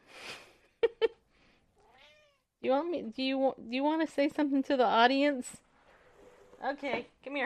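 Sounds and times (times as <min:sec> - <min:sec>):
hungry cat meowing: 0:01.8 - 0:02.5
speech: 0:02.6 - 0:05.6, 0:06.6 - 0:07.4.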